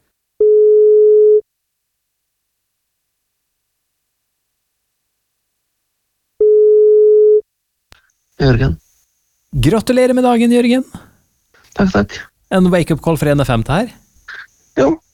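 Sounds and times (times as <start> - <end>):
electronic telephone ringback tone while placing a call: 0.4 - 1.4, 6.4 - 7.4
speech: 8.4 - 8.8, 9.5 - 11.1, 11.8 - 15.0.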